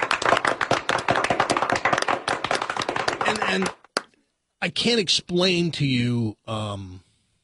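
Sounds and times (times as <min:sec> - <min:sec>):
crowd applause: 0:00.0 - 0:03.9
speech: 0:03.5 - 0:03.8, 0:04.6 - 0:07.1.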